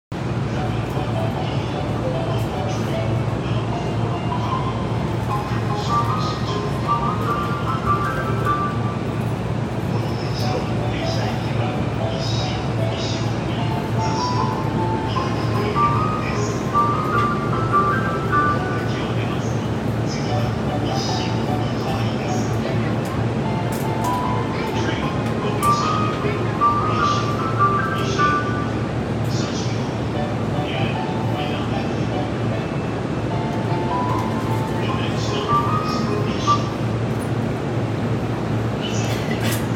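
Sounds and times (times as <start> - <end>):
train at Omiya south on the Saikyo line: 0.1 - 39.7.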